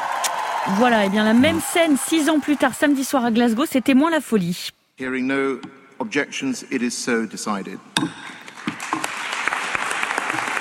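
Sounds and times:
subdued applause at the COP26 climate conference closing plenary in Glasgow: 0.0s - 3.6s, 8.5s - 10.5s
speech: 0.7s - 8.4s.

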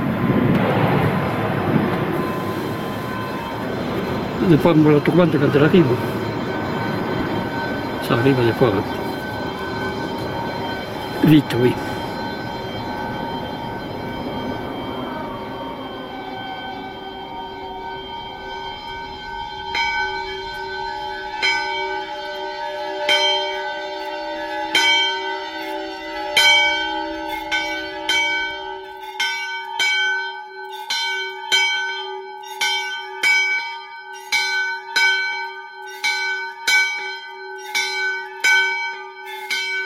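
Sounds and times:
low rumbling murmur: 0.0s - 28.9s
storm bell ringing in a granite stone storm-bell tower: 1.9s - 39.8s
speech: 4.5s - 6.2s, 8.1s - 9.0s, 11.2s - 11.9s.

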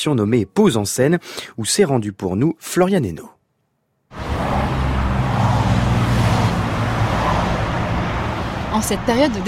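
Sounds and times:
speech: 0.0s - 3.4s, 8.7s - 9.4s
roar of cars and heavier vehicles passing at a motorway rest area: 4.1s - 9.4s.

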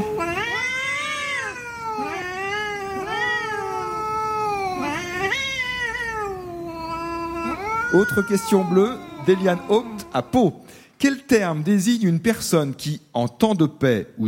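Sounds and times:
cat caterwauling in a long loud yowl: 0.0s - 10.7s
speech: 7.9s - 14.2s.

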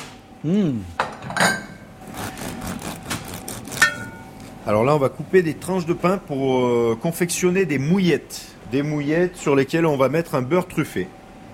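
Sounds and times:
speech: 0.4s - 1.6s, 4.7s - 11.2s
spoon scraping and clinking against a dish while serving truffled scrambled eggs: 3.7s - 4.3s.

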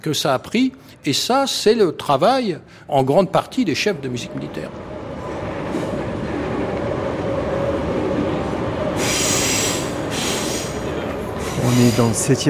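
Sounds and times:
speech: 0.0s - 4.9s, 11.7s - 12.4s
RER commuter train passing in the 7th arrondissement of Paris near the Seine: 3.4s - 12.4s
high hissing squeals of RER commuter train: 8.9s - 12.4s.

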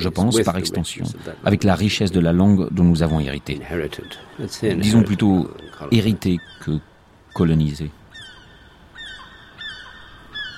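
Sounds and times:
speech: 0.0s - 8.0s
soft steady hiss: 0.0s - 10.5s
seagull calling with short harsh cries: 3.0s - 10.5s.

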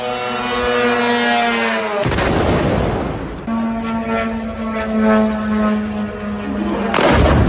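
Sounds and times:
Shahed 136 drone engine buzzing: 0.0s - 2.4s, 3.0s - 7.4s
Shahed 136 drone exploding: 2.0s - 3.3s, 6.9s - 7.4s.

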